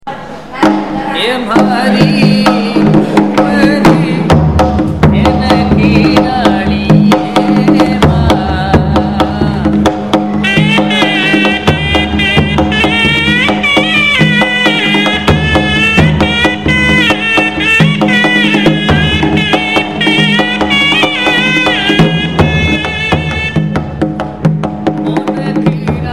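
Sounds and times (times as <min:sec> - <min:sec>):
drum playing in a fort: 0:00.4 - 0:26.1
shehnai playing in a fort: 0:10.4 - 0:24.0.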